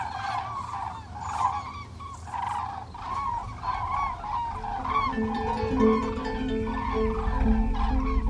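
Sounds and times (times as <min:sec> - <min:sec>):
flock of cranes calling in flight: 0:00.0 - 0:08.2
steady low rumble: 0:03.6 - 0:08.2.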